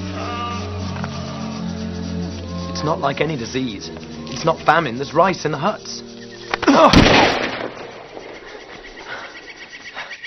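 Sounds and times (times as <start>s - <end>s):
speech: 2.8s - 6.1s, 6.7s - 7.4s
rifle gunfire burst: 6.9s - 8.4s.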